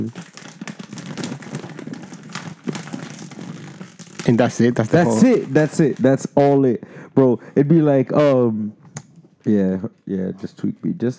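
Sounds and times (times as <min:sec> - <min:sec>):
speech: 0:00.0 - 0:00.3, 0:04.2 - 0:08.8, 0:09.4 - 0:11.1
paper bag being crinkled and crumpled: 0:00.0 - 0:06.4.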